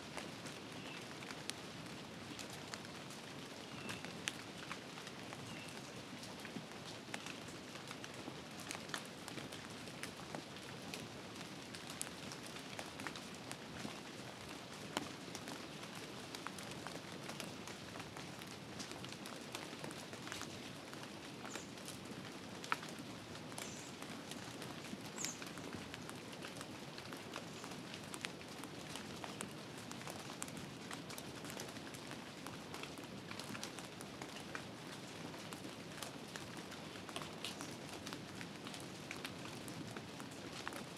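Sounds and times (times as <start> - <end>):
heavy rain falling in a forest: 0.0 - 40.9.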